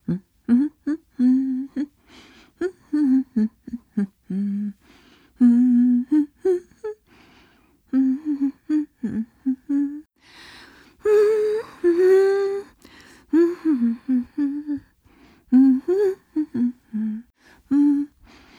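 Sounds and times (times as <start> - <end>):
woman humming: 0.0 - 1.9, 2.6 - 4.8, 5.4 - 7.0, 7.9 - 10.1, 11.0 - 14.9, 15.5 - 18.2.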